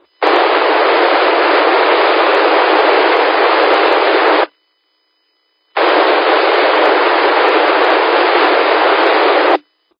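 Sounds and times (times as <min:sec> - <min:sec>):
radio repeater hiss from an unmodulated carrier: 0:00.0 - 0:09.9.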